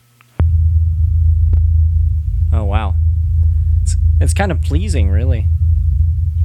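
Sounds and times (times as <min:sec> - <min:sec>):
deep low-frequency hum: 0:00.4 - 0:06.4
speech: 0:04.2 - 0:05.6.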